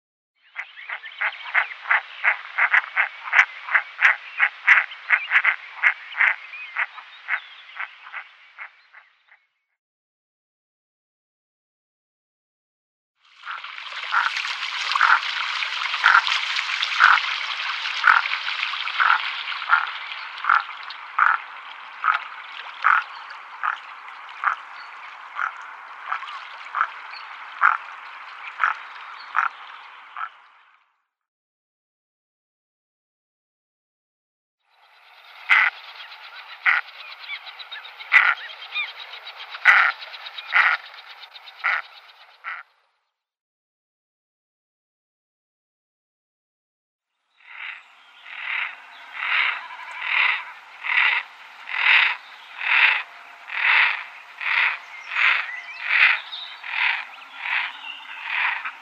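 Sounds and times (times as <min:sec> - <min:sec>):
female goosanders calling: 0:00.6 - 0:09.1, 0:13.5 - 0:30.4, 0:35.2 - 0:42.6, 0:47.4 - 0:58.8.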